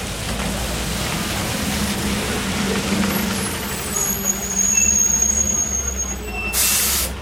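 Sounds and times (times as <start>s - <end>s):
outdoor traffic rumble at a city bus depot: 0.0s - 7.2s
high squealing tone from bus braking: 3.0s - 7.2s
bus air brakes hissing: 4.5s - 7.2s.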